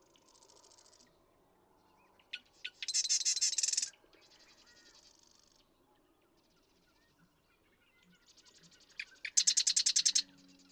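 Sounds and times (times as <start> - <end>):
marsh wren song with gurgling buzzy rattle: 2.8 - 3.9, 8.4 - 10.7.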